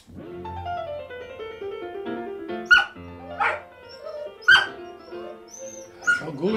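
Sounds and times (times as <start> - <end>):
recorded piano concerto for three pianos: 0.0 - 6.5
dog howling along to recorded piano music: 2.7 - 6.5.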